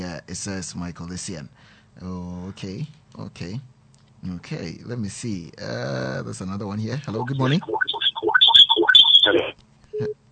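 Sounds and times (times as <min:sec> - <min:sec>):
speech: 0:00.1 - 0:07.9, 0:09.3 - 0:10.2
warbling garbled telephone line tone after a dropped call: 0:07.1 - 0:09.5
steady low telephone line beep: 0:07.1 - 0:10.3.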